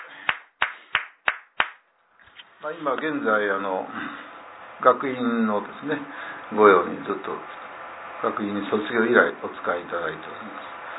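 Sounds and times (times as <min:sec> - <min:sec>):
hand claps from a gathering celebrating a teacher's birthday at an academy: 0:00.0 - 0:01.8
speech: 0:02.6 - 0:07.6, 0:08.2 - 0:10.7.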